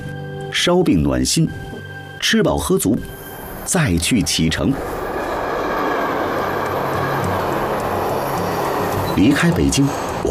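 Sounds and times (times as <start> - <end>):
speech: 0.6 - 1.7, 2.3 - 5.0, 9.2 - 10.2
high-speed train roaring heard from on board: 2.6 - 10.2.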